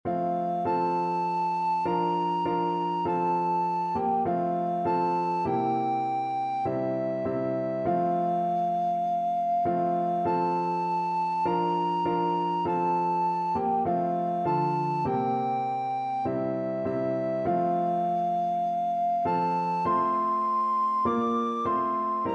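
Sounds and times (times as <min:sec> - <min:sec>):
alto recorder melody: 0:00.1 - 0:22.3.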